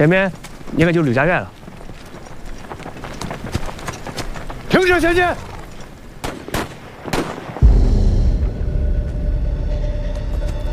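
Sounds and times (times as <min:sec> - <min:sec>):
speech: 0:00.0 - 0:01.6, 0:04.8 - 0:05.5
gunshots as scouts run into enemy troops: 0:06.2 - 0:08.0
heavier low rumble: 0:07.6 - 0:10.7.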